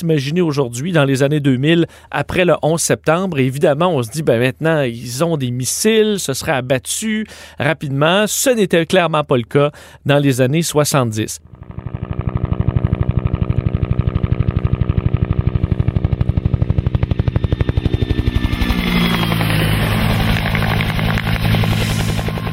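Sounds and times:
speech: 0.0s - 12.5s
Bell UH-1B Huey helicopter rotor blade slap: 11.5s - 22.5s.

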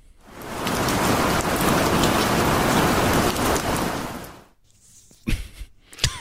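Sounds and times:
dense rainfall pouring down: 0.1s - 4.5s
sharp water drips and splashes: 0.2s - 4.4s.

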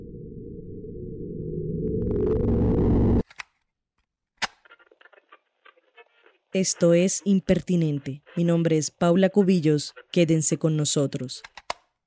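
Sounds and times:
dense low electronic drone of sonified space signals from a radio telescope: 0.0s - 3.2s
speech: 6.6s - 11.6s.

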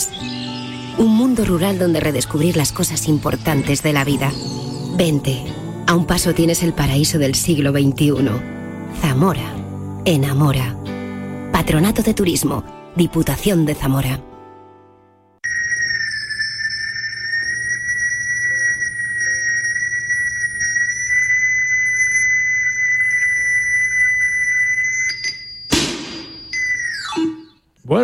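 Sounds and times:
audio aiming tone for blind precision shooters: 0.0s - 6.8s, 15.4s - 27.7s
speech: 1.0s - 10.8s, 11.6s - 14.3s.

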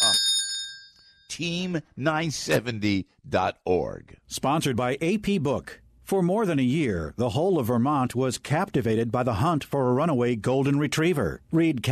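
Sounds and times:
bright bell ringing: 0.0s - 1.3s
speech: 1.4s - 11.8s.

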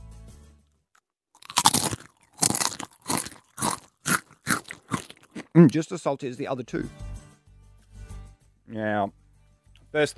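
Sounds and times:
crunching of a salty potato chip: 1.4s - 5.8s
speech: 5.6s - 7.1s, 8.7s - 9.2s, 9.9s - 10.1s.

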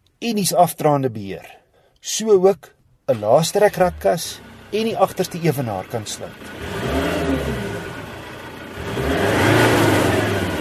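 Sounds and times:
speech: 0.2s - 6.7s
3.2-litre five-cylinder turbo diesel engine revving: 3.1s - 10.6s.

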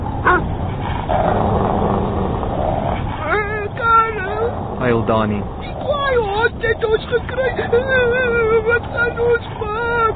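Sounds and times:
dog growling: 0.2s - 10.0s
speech: 4.9s - 9.6s.

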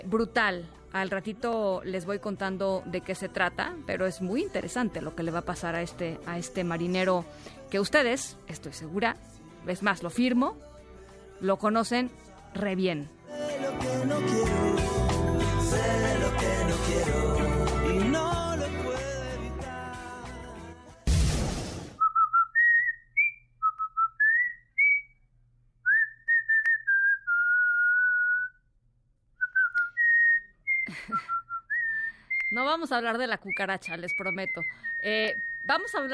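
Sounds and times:
speech: 0.1s - 10.7s, 11.4s - 14.4s, 32.8s - 36.1s
busy full music: 13.3s - 21.0s
cartoon sailor whistling a tune: 22.0s - 25.2s, 25.9s - 28.6s, 29.4s - 36.1s.

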